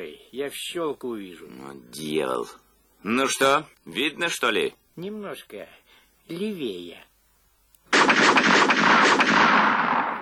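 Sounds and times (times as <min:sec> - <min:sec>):
speech: 0:00.1 - 0:07.1
pistol shots: 0:07.9 - 0:10.2.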